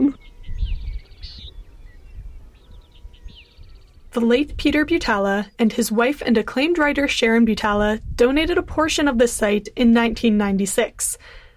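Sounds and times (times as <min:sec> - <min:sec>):
bird chirping in open grassland: 0:00.0 - 0:04.6
steady low rumble of wind: 0:00.0 - 0:10.8
speech: 0:04.2 - 0:11.4.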